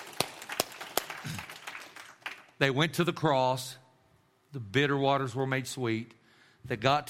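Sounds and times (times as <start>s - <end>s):
congregation applauding: 0.0s - 2.6s
speech: 2.6s - 3.8s, 4.5s - 7.0s.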